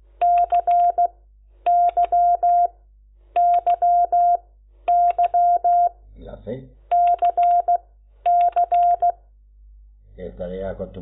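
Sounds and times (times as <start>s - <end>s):
touch-tone telephone keypad beeps dialing an outgoing call: 0.2s - 1.1s, 1.7s - 2.7s, 3.4s - 5.9s, 6.9s - 9.2s
speech: 10.8s - 11.0s.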